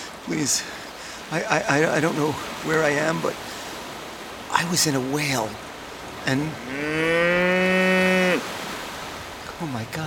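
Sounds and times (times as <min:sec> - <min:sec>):
speech: 0:00.3 - 0:03.5, 0:04.6 - 0:07.8, 0:09.6 - 0:10.0
cow mooing: 0:06.6 - 0:08.5.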